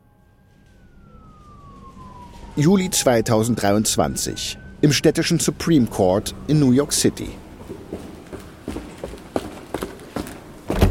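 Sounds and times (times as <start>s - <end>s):
speech: 2.6s - 7.4s
brisk footsteps clicking on a hard marble floor: 7.6s - 10.8s.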